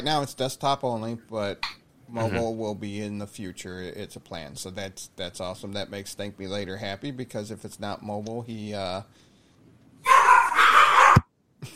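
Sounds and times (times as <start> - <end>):
speech: 0.0 - 9.3
dog barking: 10.0 - 11.3.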